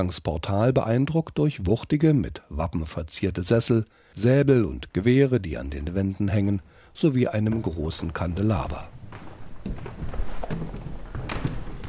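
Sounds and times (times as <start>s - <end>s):
speech: 0.0s - 9.0s
heavy footsteps on wooden stairs: 6.6s - 11.8s
wooden stair boards creaking and groaning: 7.3s - 11.8s.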